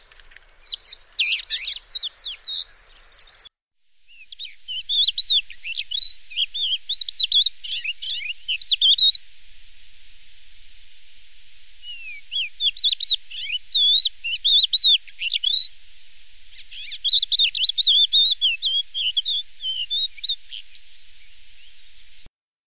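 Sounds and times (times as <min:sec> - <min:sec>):
bird calls with rapid high chirps and twittering: 0:00.0 - 0:03.5, 0:04.1 - 0:09.2, 0:11.8 - 0:15.7, 0:16.5 - 0:21.9.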